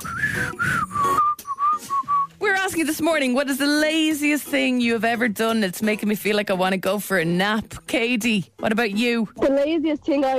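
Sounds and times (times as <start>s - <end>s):
person whistling a tune: 0.0s - 2.3s
speech: 2.8s - 10.3s.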